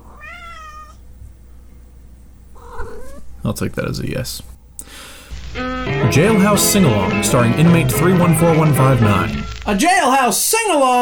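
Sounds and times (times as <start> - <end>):
cat meowing: 0.0 - 1.0, 2.6 - 3.2
speech: 3.4 - 4.6, 6.1 - 11.0.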